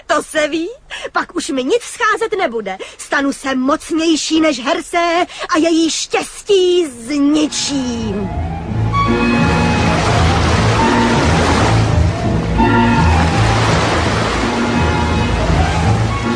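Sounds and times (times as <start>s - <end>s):
speech: 0.2s - 9.5s
loud sea waves crashing and roaring: 7.4s - 16.3s
sustained musical drone: 7.5s - 16.3s.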